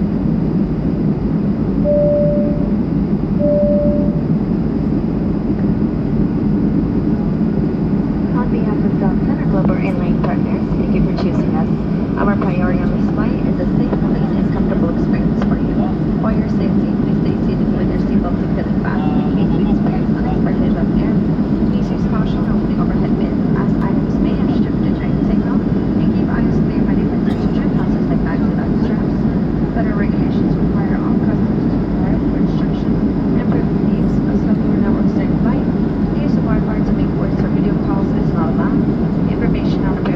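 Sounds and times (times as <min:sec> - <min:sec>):
airplane waiting for departure with low rumble: 0:00.0 - 0:40.1
two-note tone: 0:01.8 - 0:02.8, 0:03.4 - 0:04.3
faint voices: 0:08.3 - 0:40.1.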